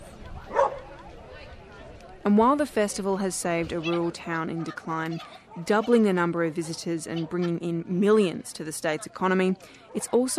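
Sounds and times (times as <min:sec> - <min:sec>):
talk: 0:00.0 - 0:10.3
Kelpie dog barking at a festival in Casterton: 0:00.5 - 0:00.8
speech: 0:02.3 - 0:10.3.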